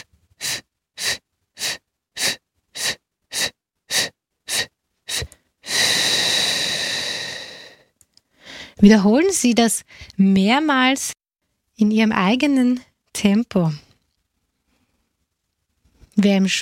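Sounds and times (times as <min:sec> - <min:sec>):
short sharp breath bursts in a breathing exercise: 0:00.0 - 0:08.8
long slow inhale demonstrated during breathing exercise: 0:05.1 - 0:08.8
speech: 0:08.8 - 0:11.2, 0:11.8 - 0:13.9, 0:16.2 - 0:16.6.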